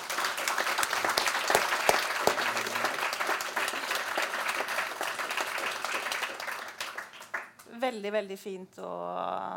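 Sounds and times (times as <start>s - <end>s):
audience at a breakfast seminar applauding: 0.0s - 7.6s
speech: 7.9s - 9.5s.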